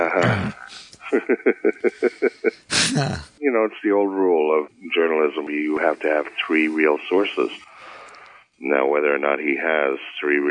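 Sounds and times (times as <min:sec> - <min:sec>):
person clearing throat: 0:00.0 - 0:00.9, 0:02.6 - 0:03.4
laughter: 0:00.0 - 0:03.3
speech: 0:00.0 - 0:07.8, 0:08.6 - 0:10.4.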